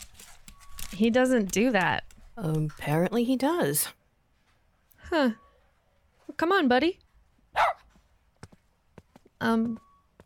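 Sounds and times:
speech: 0.9s - 4.0s, 5.1s - 5.4s, 6.3s - 7.0s, 9.4s - 9.9s
dog barking: 7.5s - 7.9s.

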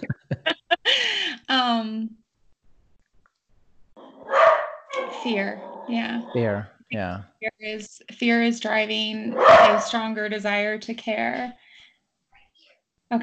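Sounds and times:
laughter: 0.0s - 1.4s, 6.4s - 7.2s
speech: 1.5s - 2.2s, 5.2s - 11.6s
pet dog barking: 4.2s - 6.6s, 9.3s - 10.0s.

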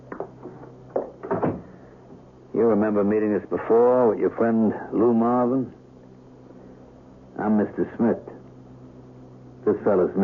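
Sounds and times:
apartment door swinging shut: 1.0s - 1.7s
speech: 2.6s - 5.8s, 7.4s - 8.3s, 9.6s - 10.2s.

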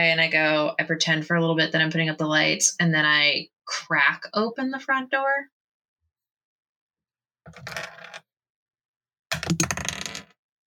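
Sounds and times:
speech: 0.0s - 5.6s, 7.5s - 8.0s, 9.5s - 9.8s
dice rolling during a tabletop game: 7.5s - 8.2s, 9.3s - 10.3s.

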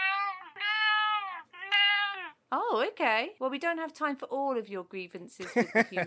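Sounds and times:
cat meowing loudly: 0.0s - 2.4s
speech: 2.7s - 6.0s.

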